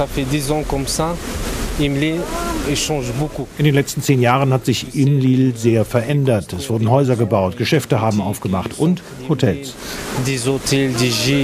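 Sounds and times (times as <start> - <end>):
speech: 0.0 - 11.4
waterfall rushing down into the valley: 0.0 - 11.4.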